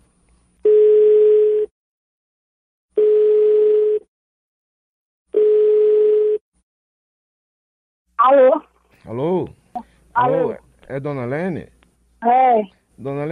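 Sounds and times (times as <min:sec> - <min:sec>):
telephone ringback tone on an outgoing prank call: 0:00.7 - 0:01.7, 0:03.0 - 0:04.1, 0:05.4 - 0:06.4
speech: 0:08.3 - 0:13.3.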